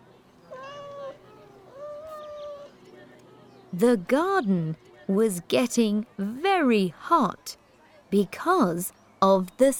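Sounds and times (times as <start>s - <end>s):
cat meowing: 0.5s - 2.8s
speech: 3.8s - 9.7s.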